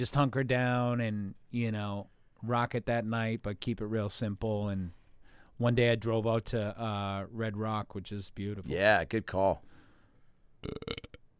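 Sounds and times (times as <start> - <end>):
speech: 0.0 - 5.0, 5.6 - 9.7, 10.6 - 11.1
loud rumbling burp after drinking sparkling water: 10.6 - 11.2.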